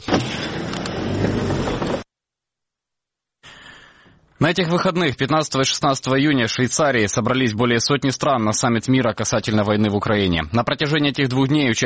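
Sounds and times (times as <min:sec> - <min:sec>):
car's steady broadband rumble: 0:00.0 - 0:02.0
speech: 0:04.4 - 0:11.8.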